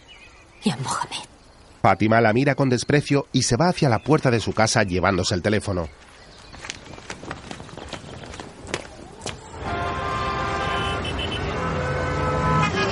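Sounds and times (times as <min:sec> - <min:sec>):
speech: 0:00.6 - 0:01.2, 0:01.8 - 0:06.1
clicking footsteps of a man walking with a briefcase: 0:05.9 - 0:09.6
busy city street traffic roar: 0:08.3 - 0:12.9
car horns in city street traffic: 0:09.5 - 0:12.9.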